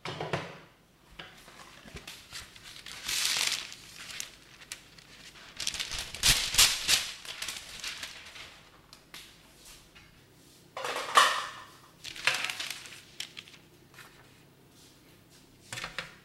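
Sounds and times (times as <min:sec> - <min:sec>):
sharper crackling handling noises: 0:01.2 - 0:10.2, 0:10.8 - 0:14.4
baking paper crinkling while lining a baking tin: 0:01.4 - 0:09.4, 0:11.4 - 0:14.4.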